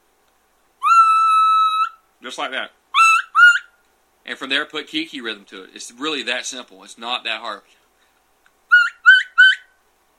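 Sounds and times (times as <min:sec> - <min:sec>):
latex diaphragm turkey call sustained whistle: 0:00.8 - 0:02.0, 0:02.9 - 0:03.8, 0:08.7 - 0:09.8
speech: 0:02.2 - 0:02.8, 0:04.2 - 0:07.8.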